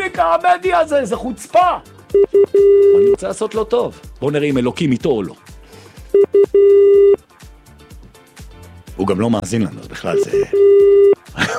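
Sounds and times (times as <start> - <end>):
speech: 0.2 - 5.5, 9.0 - 11.5
telephone ringing tone while waiting for an answer: 2.2 - 3.1, 6.2 - 7.2, 10.5 - 11.2.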